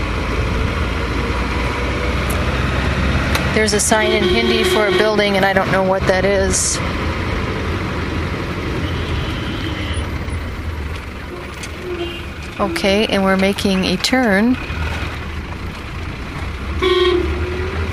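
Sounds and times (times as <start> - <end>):
dense street traffic with buses and motorcycles rumbling: 0.0 - 17.9
overlapping car horns: 3.6 - 5.9, 8.7 - 10.4, 11.2 - 13.4, 16.8 - 17.9
speech: 3.6 - 7.1, 12.6 - 14.8.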